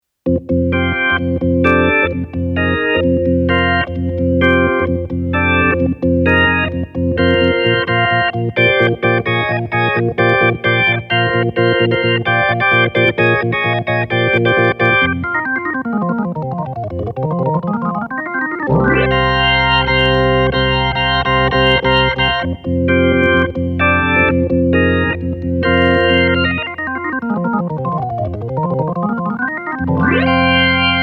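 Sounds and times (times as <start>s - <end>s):
rock organ: 0.3s - 31.0s.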